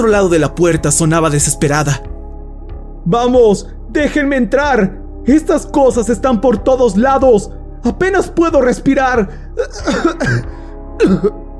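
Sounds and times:
speech: 0.0s - 2.1s, 3.0s - 11.4s
man coughing hard: 9.6s - 11.5s.

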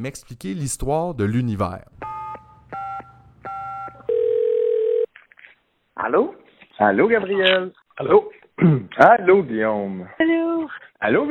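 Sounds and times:
speech: 0.0s - 2.2s, 6.1s - 10.3s, 11.0s - 11.2s
telephone tones while calling friends: 2.0s - 5.1s.

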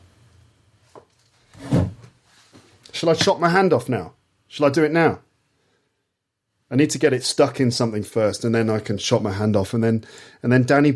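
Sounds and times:
drawer sliding shut with a thud: 1.5s - 2.2s
speech: 3.0s - 5.2s, 6.7s - 10.9s.

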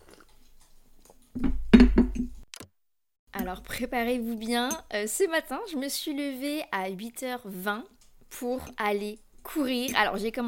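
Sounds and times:
speech: 3.5s - 10.4s
glass or cup clinking and knocking: 4.5s - 4.9s, 9.8s - 10.2s.

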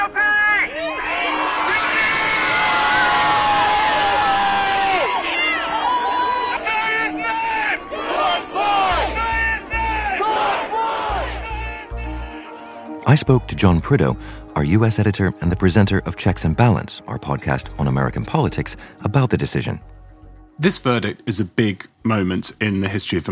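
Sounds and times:
large outdoor crowd cheering and shouting outside a courthouse after a verdict: 0.0s - 12.8s
speech: 13.1s - 20.0s, 20.6s - 23.3s.

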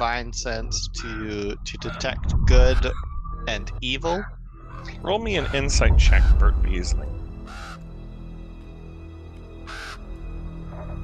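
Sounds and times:
low steady hum: 0.0s - 7.4s
speech: 0.0s - 7.6s
raven cawing: 7.4s - 8.0s, 9.6s - 10.2s.

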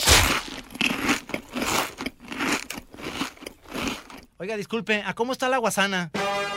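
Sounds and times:
crunchy potato chips being bitten and chewed: 0.0s - 4.3s
speech: 4.4s - 6.4s.

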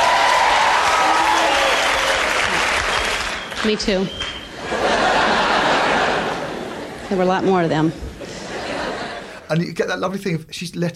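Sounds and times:
live comedy-show audience applause: 0.0s - 6.6s
speech: 3.6s - 4.8s, 7.1s - 8.1s, 9.5s - 10.9s
laughter: 4.5s - 9.7s.

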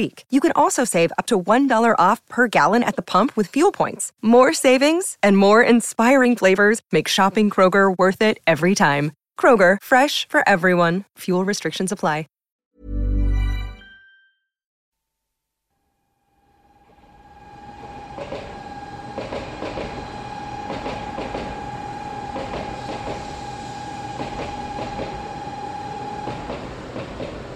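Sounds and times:
speech: 0.0s - 13.0s
sustained high whine of Shinkansen bullet train: 16.2s - 27.5s
Shinkansen bullet train pulling into Tokyo Station bound for Kyoto: 17.4s - 27.5s.

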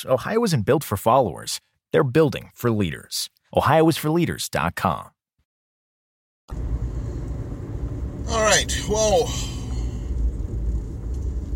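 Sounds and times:
speech: 0.0s - 5.2s, 6.5s - 6.7s, 8.3s - 9.6s
road noise inside a moving car: 6.5s - 11.5s.

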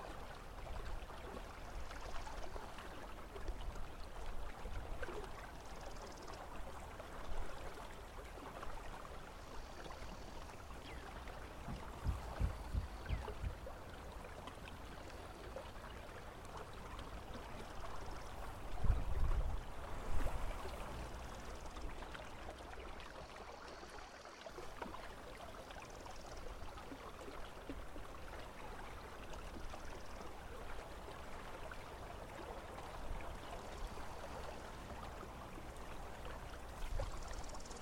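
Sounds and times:
river flowing: 0.0s - 37.8s
water lapping: 0.0s - 37.8s
knocks: 11.7s - 13.6s.

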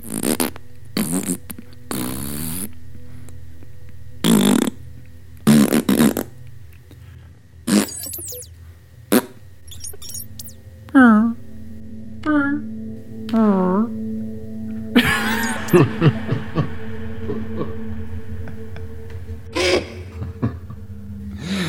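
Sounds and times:
slowed-down fart sounds: 0.0s - 2.8s, 5.4s - 6.3s, 7.7s - 8.5s
low steady hum: 2.6s - 21.6s
laughter: 15.0s - 18.9s, 19.5s - 20.9s.

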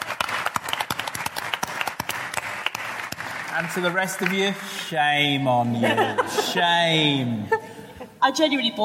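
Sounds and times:
enthusiastic audience applause: 0.0s - 5.2s
speech: 3.6s - 8.8s
laughter: 5.6s - 8.2s.

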